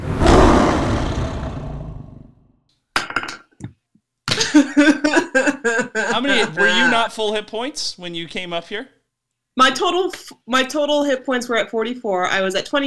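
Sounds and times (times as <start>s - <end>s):
deep monster roar: 0.0s - 2.3s
rough growling: 0.0s - 2.4s
laughter: 4.3s - 7.4s
speech: 6.4s - 9.0s, 9.6s - 12.8s.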